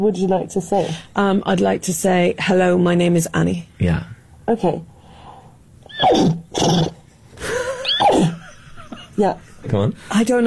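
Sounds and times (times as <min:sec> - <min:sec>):
speech: 0:00.0 - 0:04.9, 0:06.0 - 0:07.0, 0:09.2 - 0:10.4
woman wearing a horse head imitating a horse neigh: 0:05.9 - 0:07.0, 0:07.8 - 0:08.4.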